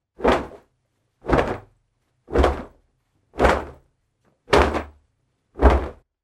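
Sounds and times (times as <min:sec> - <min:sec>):
towel: 0:00.0 - 0:03.9, 0:04.5 - 0:05.0, 0:05.6 - 0:06.0.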